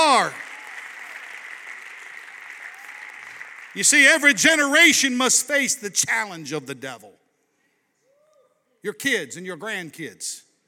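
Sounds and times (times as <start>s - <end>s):
church congregation clapping their hands during a service: 0.0s - 5.6s
speech: 3.7s - 7.2s, 8.8s - 10.5s.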